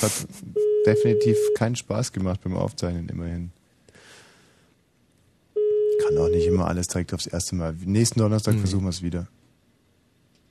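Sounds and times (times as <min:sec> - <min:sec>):
speech: 0:00.0 - 0:03.6, 0:06.0 - 0:09.4
hiss and rustle: 0:00.0 - 0:10.4
mobile phone ringing outside: 0:00.6 - 0:01.6, 0:05.6 - 0:06.6.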